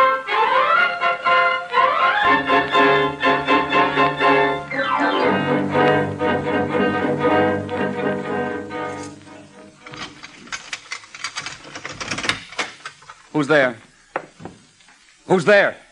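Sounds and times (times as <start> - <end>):
sustained tonal sound: 0.0 - 9.8
typewriter keys clacking: 9.8 - 13.2
speech: 13.4 - 13.8, 15.3 - 15.8.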